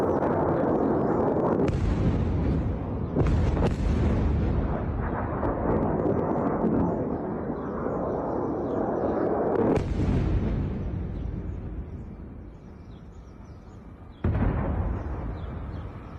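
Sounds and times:
heavy explosions in the sky from air defense interceptions: 0.0 - 12.8, 14.2 - 16.1.

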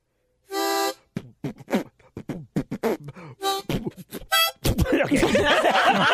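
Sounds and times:
short bright harmonica blasts: 0.5 - 4.9
people talking: 4.7 - 5.8
noisy burst of laughter and chatter: 4.8 - 6.1.

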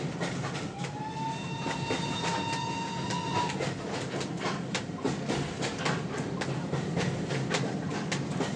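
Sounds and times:
moving train roaring with wheels clacking on rails: 0.0 - 8.5
train whistle: 0.7 - 3.7.

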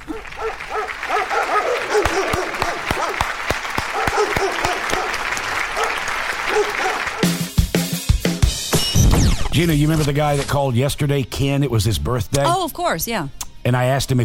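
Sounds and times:
dog barks sequenced at different pitches playing a Christmas song: 0.1 - 3.2, 3.9 - 5.2, 5.8 - 7.6
musical backing: 5.8 - 14.2
speech: 9.6 - 14.2.

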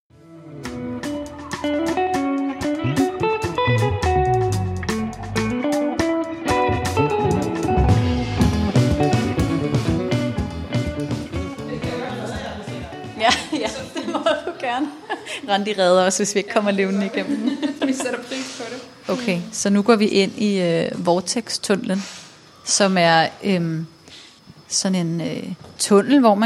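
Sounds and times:
distorted rhythmic background music with dense beats in a museum: 0.6 - 13.3
laughter: 11.8 - 15.6, 16.9 - 19.0
speech: 15.5 - 18.5, 19.1 - 23.9, 24.7 - 26.4.

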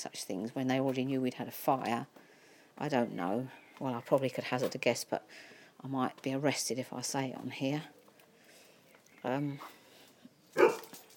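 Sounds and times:
speech: 0.0 - 2.2, 2.8 - 8.0, 9.2 - 9.8
dog barking excitedly: 10.6 - 10.9.

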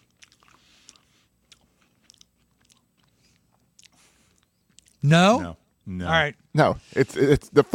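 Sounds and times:
crunchy chewing of a ketchup-covered chocolate wafer bar: 0.0 - 5.0
speech: 5.0 - 7.7.

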